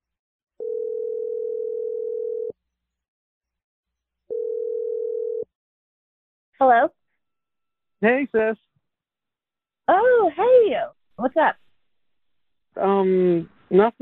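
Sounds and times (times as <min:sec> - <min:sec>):
telephone ringing tones before a call connects: 0:00.6 - 0:02.6, 0:04.3 - 0:05.5
speech: 0:08.0 - 0:08.7, 0:10.3 - 0:11.6, 0:12.8 - 0:14.0.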